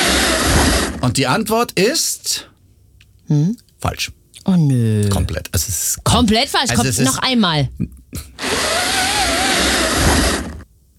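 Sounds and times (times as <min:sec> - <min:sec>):
pleated window blind being pulled up: 0:00.0 - 0:01.0, 0:08.4 - 0:10.6
speech: 0:01.0 - 0:02.5, 0:03.3 - 0:08.8.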